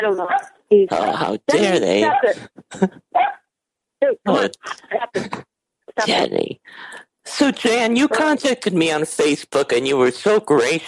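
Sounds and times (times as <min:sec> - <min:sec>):
dog barking: 0:00.0 - 0:00.6, 0:03.1 - 0:03.5
speech: 0:00.0 - 0:03.3, 0:04.0 - 0:10.8.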